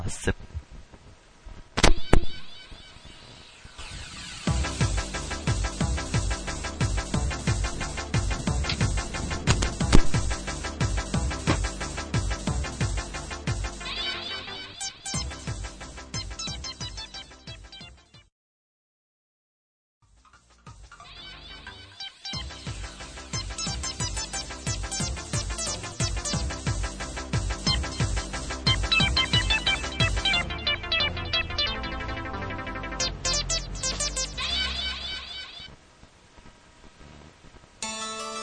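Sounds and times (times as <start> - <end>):
speech: 0.0 - 0.5
upbeat video game music remix: 3.8 - 18.3, 20.2 - 35.7, 37.8 - 38.4.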